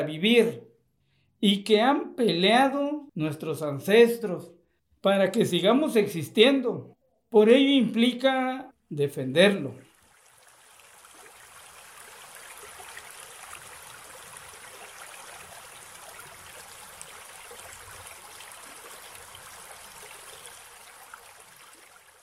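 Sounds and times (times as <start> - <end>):
speech: 0.0 - 0.7, 1.4 - 9.8
mountain stream rushing: 10.0 - 22.2.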